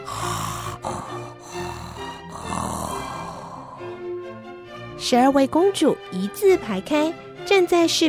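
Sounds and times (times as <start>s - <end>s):
person acting out a soldier snoring in bed: 0.0s - 4.0s
speech: 5.0s - 8.0s.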